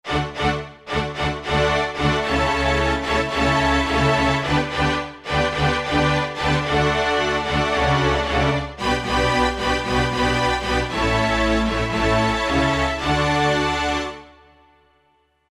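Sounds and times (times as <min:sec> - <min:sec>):
synthesized orchestra ensemble on E-mu Proteus FX sound module: 0:00.0 - 0:14.9.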